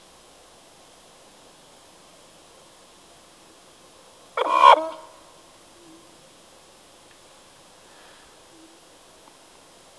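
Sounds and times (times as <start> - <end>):
dogs barking: 4.4 - 5.1.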